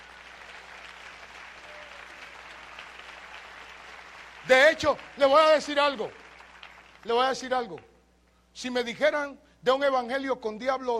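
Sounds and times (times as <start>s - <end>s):
sizable audience applauding: 0.0s - 7.1s
speech: 4.5s - 6.2s, 7.0s - 7.9s, 8.6s - 10.9s.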